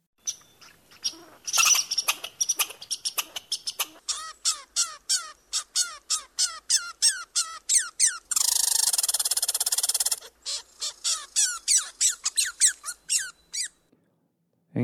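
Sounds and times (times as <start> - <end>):
angry squirrel scolding with sharp high chirping barks: 0.2 - 13.8.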